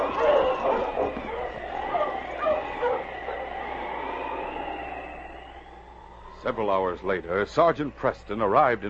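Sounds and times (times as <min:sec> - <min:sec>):
team of husky sled dogs barking and yipping in a snowstorm: 0:00.0 - 0:04.1
speech: 0:06.5 - 0:08.8.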